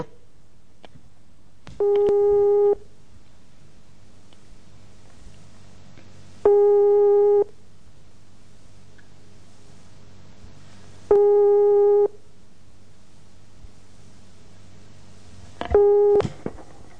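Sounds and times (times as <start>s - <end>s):
faint low hum: 0.0s - 16.9s
speech: 1.8s - 2.3s
telephone busy tone after call hung up: 1.8s - 2.8s, 6.5s - 7.5s, 11.1s - 12.2s, 15.7s - 16.2s.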